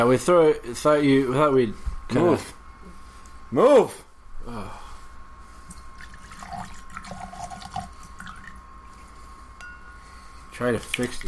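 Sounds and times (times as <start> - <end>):
speech: 0.0 - 2.6, 3.5 - 4.8, 10.6 - 11.2
faint constant hum: 0.0 - 11.2
drink pouring into a glass: 5.7 - 8.6.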